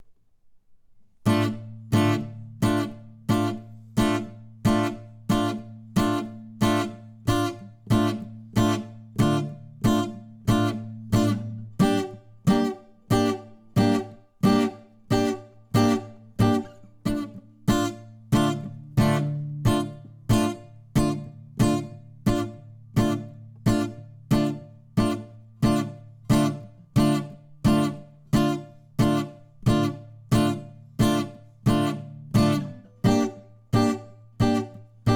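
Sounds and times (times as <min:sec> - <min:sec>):
acoustic guitar note attack and release: 0:01.2 - 0:35.1.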